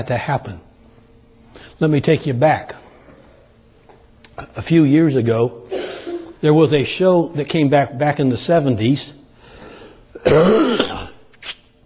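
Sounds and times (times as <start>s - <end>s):
speech: 0.0s - 0.7s, 1.8s - 2.8s, 4.4s - 5.8s, 6.4s - 9.2s, 10.2s - 10.8s
man giving a talk coughing: 5.7s - 6.4s, 10.2s - 11.2s.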